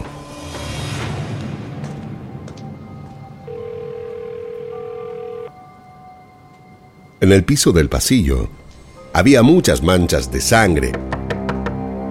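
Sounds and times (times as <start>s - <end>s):
sustained electronic phone ringback tone: 3.5s - 5.6s
speech: 7.2s - 8.6s, 9.2s - 11.2s.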